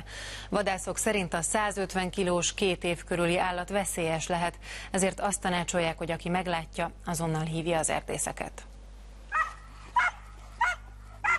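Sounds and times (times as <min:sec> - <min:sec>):
faint low hum: 0:00.0 - 0:11.3
speech: 0:00.5 - 0:08.7
hunting dogs barking while searching for a bear: 0:09.3 - 0:11.3.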